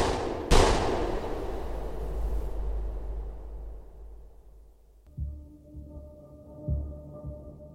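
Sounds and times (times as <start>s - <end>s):
pistol shot inside a garage with long decay: 0.0s - 2.1s
low throbbing hum: 0.1s - 6.1s.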